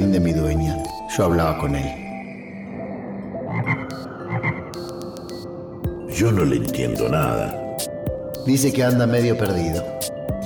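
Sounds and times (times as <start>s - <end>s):
speech: 0.2s - 2.0s, 6.2s - 10.0s
toad croaking low and throaty: 3.5s - 4.7s.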